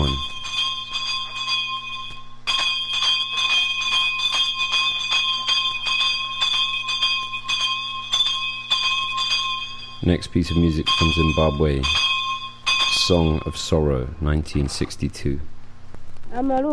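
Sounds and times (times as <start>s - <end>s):
speech: 0.0s - 0.3s, 10.0s - 12.0s, 13.1s - 15.5s, 16.4s - 16.7s
bells ringing in Trinidad: 0.0s - 14.9s.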